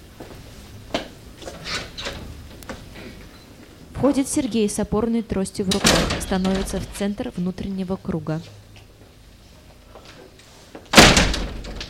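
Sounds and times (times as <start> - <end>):
door opening and closing: 1.5 - 3.2, 5.6 - 7.1, 10.9 - 11.8
speech: 4.0 - 8.6.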